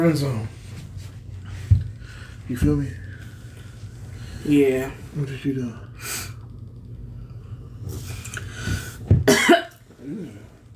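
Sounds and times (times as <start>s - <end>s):
speech: 0.0s - 0.6s, 2.5s - 3.0s, 4.4s - 6.2s
low rumble: 0.0s - 10.7s
person coughing: 9.2s - 10.4s.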